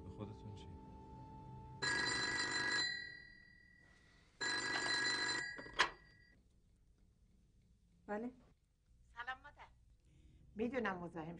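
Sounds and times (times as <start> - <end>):
telephone ringing with a metallic bell trill: 1.2 - 6.4
speech: 8.1 - 8.5, 10.6 - 11.3.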